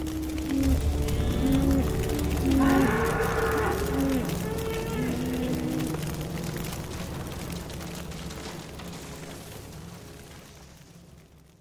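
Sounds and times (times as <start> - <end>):
continuous rumbling background: 0.0 - 11.4
cattle and buffalo mooing plaintively: 0.1 - 6.2.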